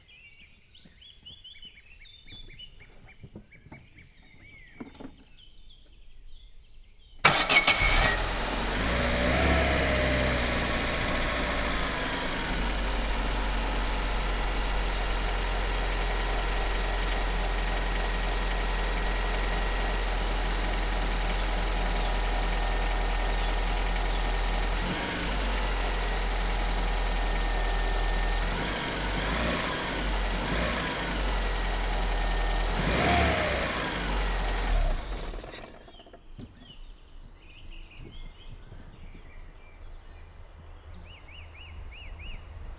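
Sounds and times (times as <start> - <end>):
Opel car engine starting with the bonnet open: 7.2 - 36.2.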